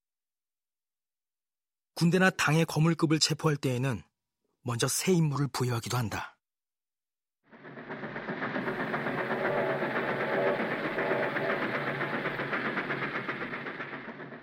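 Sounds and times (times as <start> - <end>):
speech: 2.0 - 6.3
train rolling along rails: 7.5 - 14.4
rapid rhythmic clatter of train wheels: 7.6 - 14.4.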